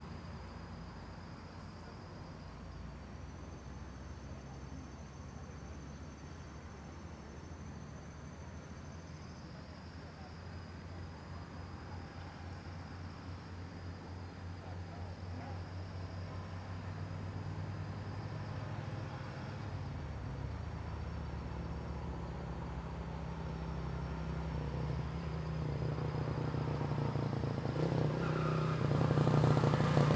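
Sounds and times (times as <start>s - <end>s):
distant people talking: 4.0s - 30.1s
motorcycle passing on a road at night: 17.2s - 30.1s.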